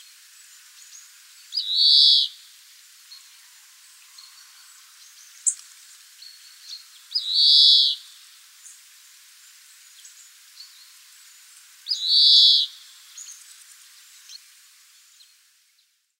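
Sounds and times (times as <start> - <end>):
faint ticks: 5.4 - 5.9
European greenfinch Chloris chloris wheezing calls: 7.2 - 8.0, 12.0 - 12.7.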